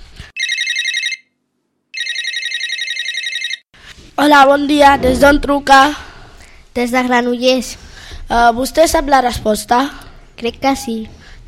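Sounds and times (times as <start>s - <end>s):
telephone ringing for an incoming call: 0.4s - 1.4s, 2.0s - 3.7s
speech: 4.2s - 6.0s, 6.8s - 11.2s
low thump: 4.8s - 5.6s.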